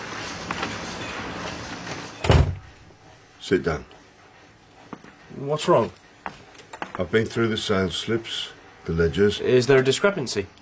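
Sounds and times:
soft hiss: 0.0 - 10.6
heavy door pushed closed with a thud: 2.2 - 2.7
speech: 3.5 - 3.9, 5.4 - 6.0, 7.0 - 10.6.

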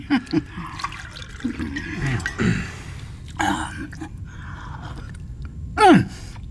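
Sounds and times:
2024 Swaledale claret glugging into a glass: 0.0 - 4.3.

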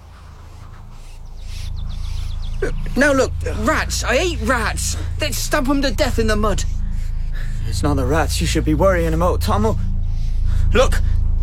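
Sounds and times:
birds singing in short high chirps: 0.0 - 11.4
steady low rumble: 0.0 - 11.4
speech: 2.6 - 6.7, 7.7 - 9.9, 10.7 - 11.1.

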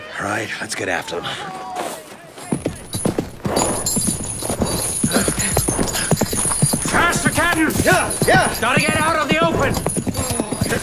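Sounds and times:
speech: 0.2 - 1.8, 7.4 - 9.9
horse hooves clip-clopping: 2.4 - 10.8.

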